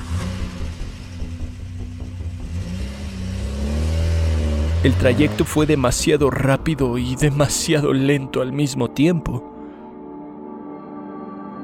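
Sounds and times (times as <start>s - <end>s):
car engine revving as the car pulls away fast: 0.0s - 7.2s
speech: 4.8s - 9.5s.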